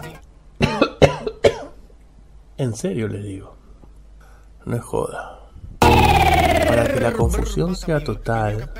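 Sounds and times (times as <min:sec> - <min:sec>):
sharp harsh coughs from allergy to a small tree: 0:00.6 - 0:01.8
speech: 0:02.6 - 0:03.6, 0:04.6 - 0:05.4, 0:06.7 - 0:08.7.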